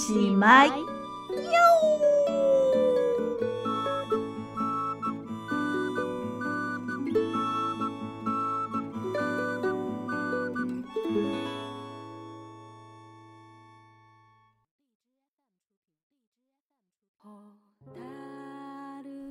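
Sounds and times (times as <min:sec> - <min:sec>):
steady musical backing: 0:00.0 - 0:14.4
speech: 0:00.1 - 0:02.6
angry cat yowling: 0:01.4 - 0:03.8.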